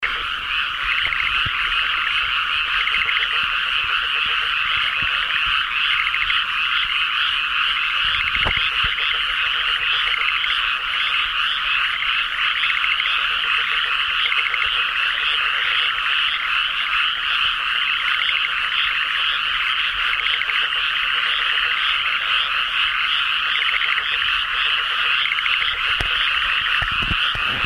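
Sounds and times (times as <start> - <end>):
Japanese tree frog calling: 0.0 - 27.6.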